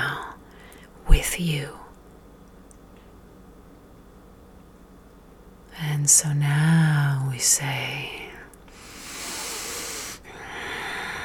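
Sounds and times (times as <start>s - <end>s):
speech: 1.2s - 1.8s, 6.0s - 8.2s
deep slow breath in and out: 8.7s - 11.2s.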